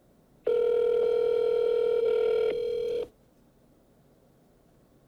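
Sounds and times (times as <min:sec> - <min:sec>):
telephone ringing tone on a call to a Chinese restaurant: 0:00.4 - 0:03.1.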